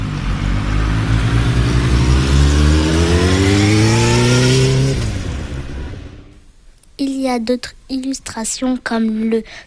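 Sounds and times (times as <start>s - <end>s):
motorcycle engine revving: 0.0s - 6.4s
speech: 7.4s - 9.6s.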